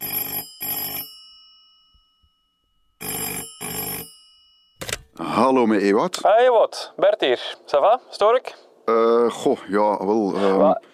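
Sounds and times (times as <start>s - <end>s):
telephone ringing with trilling bell tones: 0.0s - 2.2s, 3.0s - 5.2s
speech: 5.2s - 10.9s.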